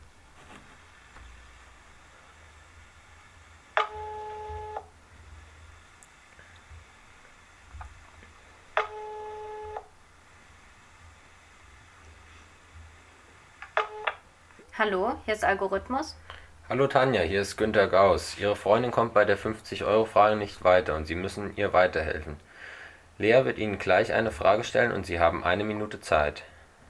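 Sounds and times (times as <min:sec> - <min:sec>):
faint hiss: 0:00.0 - 0:26.8
outgoing telephone call ringing: 0:03.8 - 0:04.9, 0:08.8 - 0:09.9, 0:13.7 - 0:14.2
speech: 0:14.8 - 0:22.5, 0:23.2 - 0:26.5.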